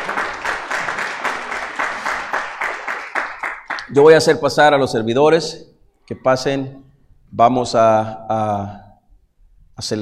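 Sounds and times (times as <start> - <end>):
church audience applauding after a prayer: 0.0 - 4.0
speech: 3.9 - 8.8, 9.8 - 10.0.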